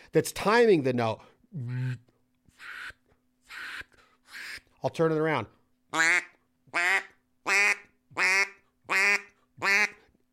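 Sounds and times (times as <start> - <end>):
speech: 0.1 - 2.8, 4.8 - 7.0
handheld duck call quacking: 1.7 - 4.7, 5.9 - 10.0.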